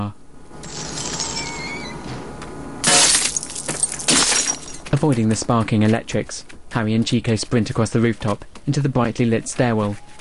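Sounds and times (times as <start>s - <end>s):
speech: 0.0s - 0.2s, 4.9s - 10.1s
faint high whines: 0.0s - 3.0s
neon sign glass shattering under gunfire: 0.6s - 1.7s, 2.8s - 4.9s.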